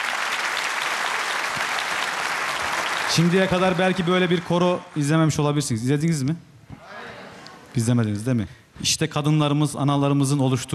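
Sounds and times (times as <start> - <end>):
audience applause for a women's choir at a concert: 0.0 - 5.3
speech: 3.1 - 6.5, 7.8 - 10.7.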